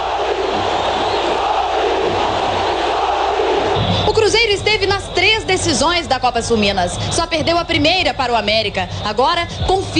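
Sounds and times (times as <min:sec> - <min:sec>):
sharper burst of crowd shouting: 0:00.0 - 0:04.6
football stadium crowd cheering after a goal: 0:00.0 - 0:09.9
speech: 0:04.6 - 0:09.9.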